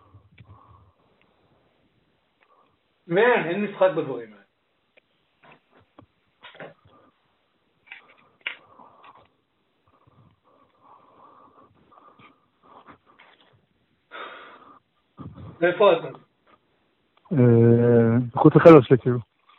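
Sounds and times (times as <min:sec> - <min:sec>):
heavy ragged panting after running: 0:00.0 - 0:01.2, 0:08.0 - 0:15.6
speech: 0:03.1 - 0:04.3, 0:15.6 - 0:16.2, 0:17.3 - 0:17.6, 0:18.4 - 0:19.3.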